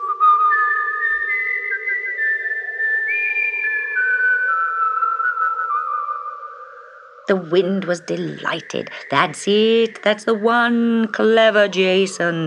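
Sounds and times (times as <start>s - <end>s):
person whistling a slow wavering tune: 0.0s - 6.3s
speech: 7.3s - 12.4s.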